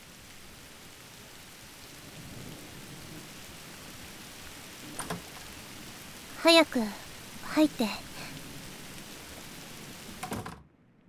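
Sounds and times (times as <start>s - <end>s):
heavy rain: 0.0s - 10.6s
speech: 6.4s - 7.0s, 7.6s - 8.1s.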